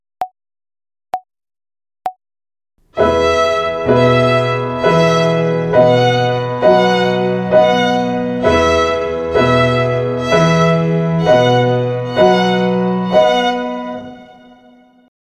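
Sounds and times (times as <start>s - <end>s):
violin finger exercise on the E string in triple meter: 2.8s - 15.0s.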